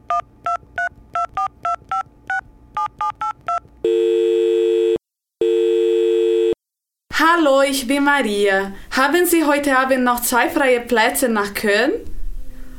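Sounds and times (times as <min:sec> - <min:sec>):
steady loud phone tone: 0:00.1 - 0:06.6
speech: 0:07.2 - 0:12.1.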